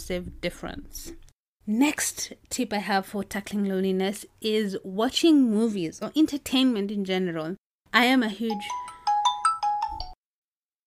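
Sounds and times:
speech: 0.1s - 8.9s
phone ringtone of bright electronic notes: 8.5s - 10.2s.

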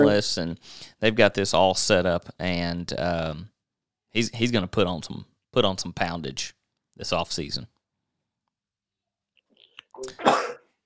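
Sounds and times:
speech: 0.0s - 3.5s, 4.1s - 7.7s, 10.0s - 10.5s
person sneezing: 10.1s - 10.7s.

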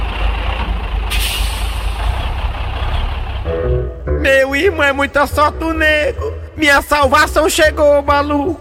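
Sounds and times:
heavy truck engine drone: 0.0s - 8.5s
truck air brakes hissing: 1.1s - 2.5s
speech: 4.6s - 8.5s.

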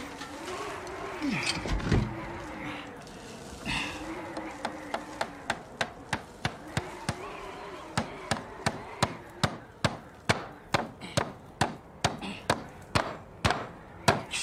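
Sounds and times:
murmuring voices: 0.0s - 10.8s
hammer driving nails into wooden boards: 8.0s - 14.3s.

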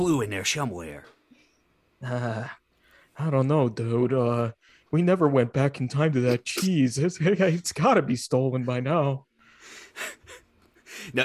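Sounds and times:
speech: 0.0s - 1.2s, 2.0s - 2.6s, 3.2s - 10.4s, 11.0s - 11.2s
heavy airy breathing of a person with a cold: 9.4s - 11.2s.

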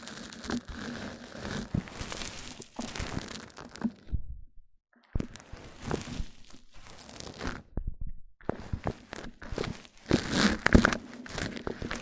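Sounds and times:
crinkling and crumpling rubs against a microphone: 0.0s - 4.3s, 5.0s - 12.0s
tapping against a microphone: 7.6s - 9.0s.

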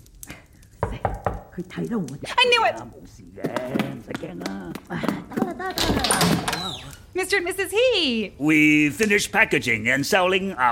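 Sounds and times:
knocking on a door: 0.8s - 1.4s
speech: 1.6s - 10.7s.

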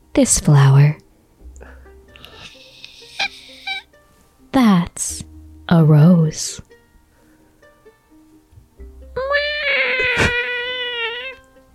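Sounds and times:
speech: 0.2s - 1.0s, 5.0s - 6.8s
pet cat meowing: 9.2s - 11.4s.

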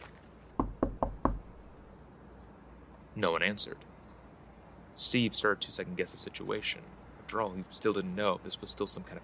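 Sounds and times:
firm knocks on the wooden front door of a house: 0.6s - 1.8s
speech: 3.2s - 3.9s, 5.0s - 9.2s.

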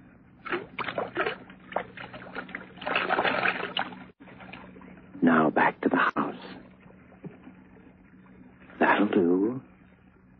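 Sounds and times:
whiskey glugging and splashing as poured from a bottle: 0.4s - 4.1s
speech: 5.2s - 6.6s.

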